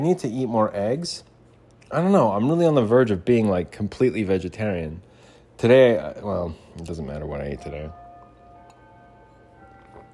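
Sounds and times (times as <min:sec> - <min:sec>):
speech: 0:00.0 - 0:01.3, 0:01.9 - 0:08.0
faint steady hum: 0:00.0 - 0:10.1
clocks going off with sustained ringing tones: 0:07.4 - 0:10.1.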